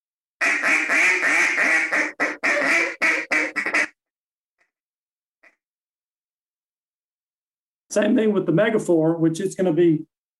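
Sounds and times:
duck call blown in raspy quacks: 0.4s - 4.0s
speech: 7.9s - 10.1s.

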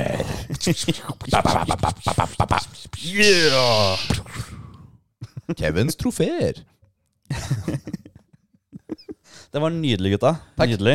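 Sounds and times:
speech: 0.0s - 4.2s, 5.5s - 6.7s, 7.3s - 8.0s, 9.5s - 10.9s
sliding vocal scratch bending up and down: 1.1s - 4.4s
person beatboxing: 1.6s - 4.2s
laughter: 7.3s - 9.2s.

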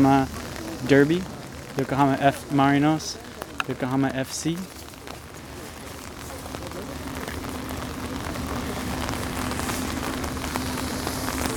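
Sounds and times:
speech: 0.0s - 4.8s
steady rain on outdoor surfaces: 0.0s - 11.5s.

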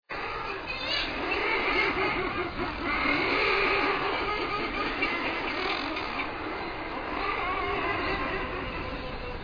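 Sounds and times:
common murres growling in a colony: 0.1s - 9.4s.

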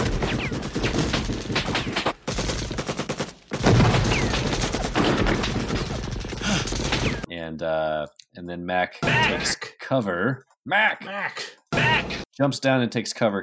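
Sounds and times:
rapid machine gun fire from a guerrilla fighter in a film scene: 0.0s - 7.3s
speech: 7.6s - 13.4s.

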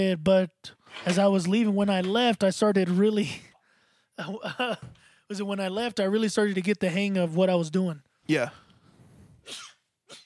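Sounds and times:
speech: 0.0s - 3.5s, 4.2s - 8.6s, 9.5s - 9.7s
person sneezing: 9.4s - 10.2s.

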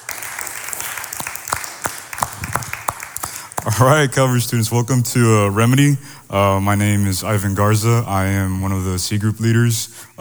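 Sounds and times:
audience applause for the band: 0.0s - 5.4s
speech: 3.7s - 10.2s.

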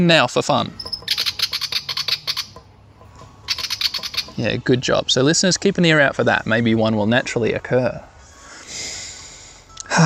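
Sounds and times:
speech: 0.0s - 0.8s, 4.4s - 8.1s
willy wagtail chirping in a quick scratchy run of sharp notes: 0.7s - 5.1s.

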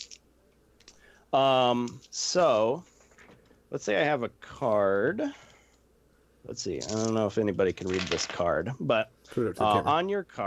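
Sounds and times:
speech: 1.3s - 2.9s, 3.7s - 5.5s, 6.4s - 10.4s
six-sided plastic dice clicking when picked up from a desk: 6.8s - 7.2s, 7.9s - 8.4s.

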